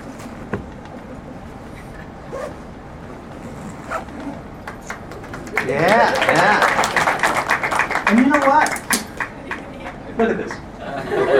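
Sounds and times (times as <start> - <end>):
zipper drawn along a stuffed packed bag: 3.4 - 4.4
laughter: 4.8 - 11.3
speech: 5.7 - 6.8, 10.2 - 10.6.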